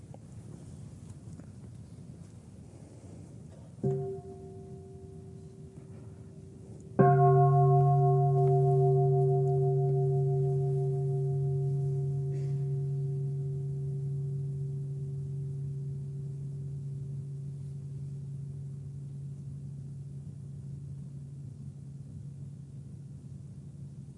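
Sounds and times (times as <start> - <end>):
meditation bell ringing: 3.8 - 22.9.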